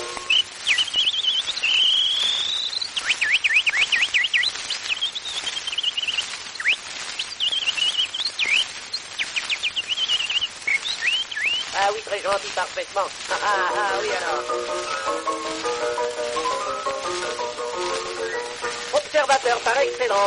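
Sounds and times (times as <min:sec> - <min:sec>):
person whistling an imitation of nightingale song: 0:00.0 - 0:11.8, 0:14.7 - 0:19.0
speech: 0:12.2 - 0:17.5, 0:19.2 - 0:20.2.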